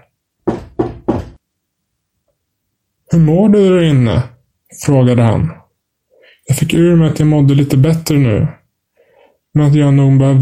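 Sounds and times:
firm knocking on a door: 0.4 - 1.4
speech: 3.1 - 5.6, 6.5 - 8.6, 9.5 - 10.3.

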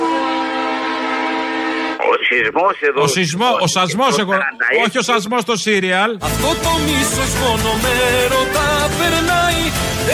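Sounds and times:
train horn: 0.0 - 2.0
speech: 2.3 - 10.1.

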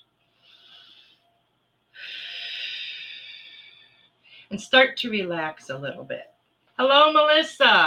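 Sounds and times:
person taking a deep breath during a guided relaxation exercise: 0.3 - 1.3, 1.9 - 4.5
speech: 4.5 - 7.8.

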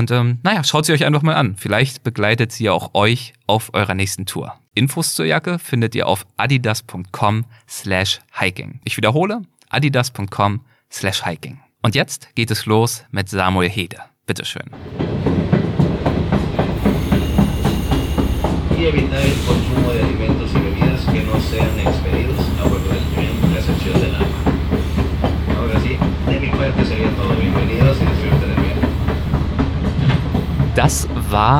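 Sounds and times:
speech: 0.0 - 15.5, 18.8 - 20.0, 30.8 - 31.5
moving train interior rumble: 14.8 - 31.5.

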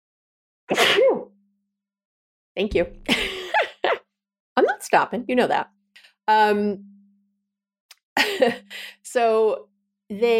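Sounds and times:
speech: 0.7 - 1.0, 2.6 - 3.3, 4.8 - 6.9, 8.2 - 10.3
loud sneeze: 0.7 - 1.3.

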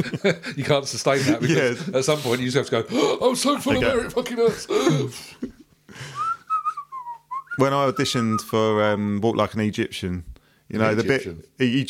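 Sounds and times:
laughter: 0.0 - 2.4
speech: 0.0 - 6.1, 7.6 - 11.8
person whistling a short clear melody: 6.1 - 8.5.

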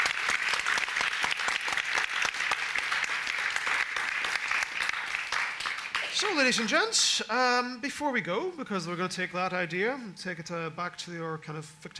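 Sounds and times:
crowd applauding: 0.0 - 6.8
speech: 6.2 - 11.9.

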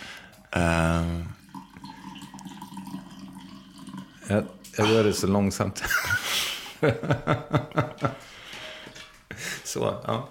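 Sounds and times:
coffee pouring into a cup: 0.3 - 5.6
speech: 0.5 - 1.3, 4.3 - 6.2, 6.8 - 8.4, 9.7 - 10.2.

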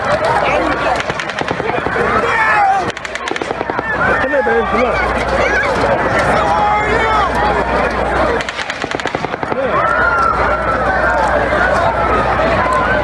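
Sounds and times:
festival crowd running and fleeing from gunfire: 0.0 - 13.0
panicked festival crowd shouting and screaming in Las Vegas at night: 0.0 - 13.0
automatic gunfire at a country music festival in Las Vegas at night: 0.7 - 4.4, 8.4 - 9.9.

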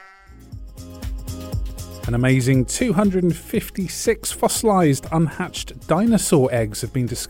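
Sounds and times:
sheep bleating: 0.0 - 0.4
speech: 2.1 - 7.2.

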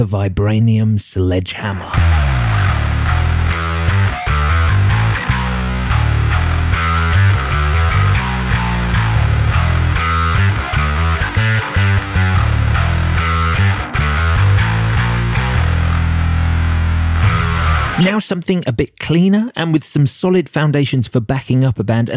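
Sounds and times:
speech: 0.0 - 2.4, 18.0 - 22.1
heavily distorted high-gain electric guitar riff with chugging low notes: 1.8 - 18.1.

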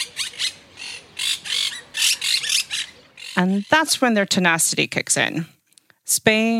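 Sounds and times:
flock of pet monk parakeets squawking and chattering: 0.0 - 4.0
speech: 3.4 - 6.5.

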